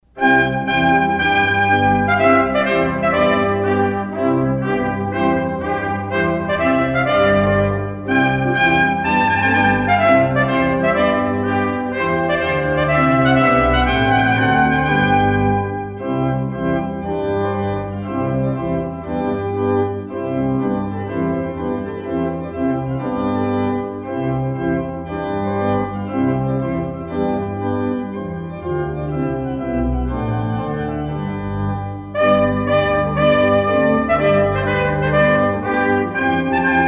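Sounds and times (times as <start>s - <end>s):
organ: 0.0s - 36.8s
solo trumpet: 0.1s - 18.3s, 32.1s - 36.8s.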